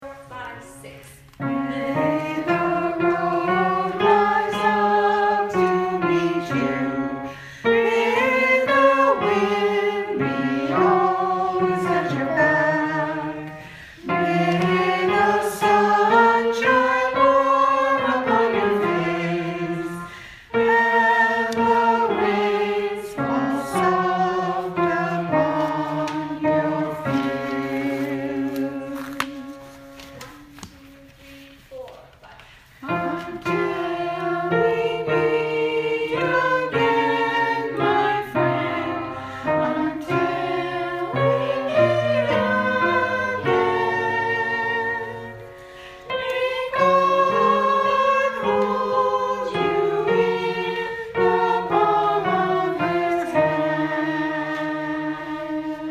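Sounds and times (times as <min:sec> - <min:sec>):
all voices singing: 0:00.3 - 0:31.5, 0:32.7 - 0:55.9.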